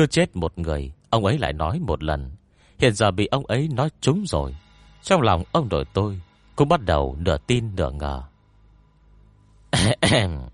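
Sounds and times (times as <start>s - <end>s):
speech: 0.0s - 8.3s, 9.7s - 10.5s
man giving dry coughs: 9.8s - 10.5s.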